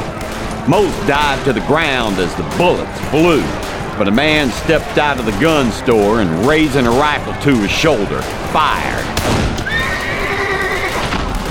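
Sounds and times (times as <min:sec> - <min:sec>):
rough noisy background: 0:00.0 - 0:11.4
speech: 0:00.7 - 0:09.4
galloping horse neighing: 0:09.6 - 0:11.2.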